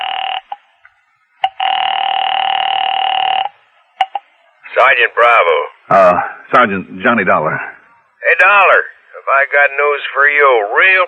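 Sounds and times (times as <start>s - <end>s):
long steady telephone ringing buzz: 0.0s - 0.6s, 1.4s - 3.6s
telephone line tone in a phone booth: 0.0s - 0.6s, 1.4s - 4.2s
speech: 4.8s - 7.7s, 8.3s - 11.0s.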